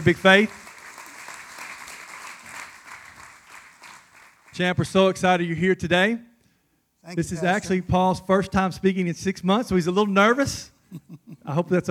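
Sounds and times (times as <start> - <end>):
speech: 0.0 - 0.6, 4.6 - 6.3, 7.0 - 11.9
audience applause welcoming a pastor up to speak: 0.0 - 4.6.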